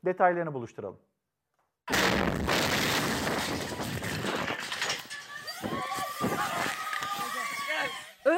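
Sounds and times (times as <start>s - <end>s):
speech: 0.0s - 1.2s, 3.4s - 4.5s
gas box explosion blast: 1.9s - 4.4s
people screaming and shouting: 4.9s - 8.3s.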